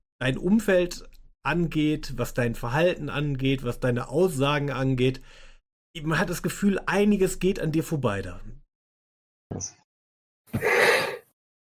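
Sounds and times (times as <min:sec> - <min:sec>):
speech: 0:00.2 - 0:08.6, 0:09.5 - 0:09.8, 0:10.5 - 0:10.7
person yawning: 0:10.6 - 0:11.2.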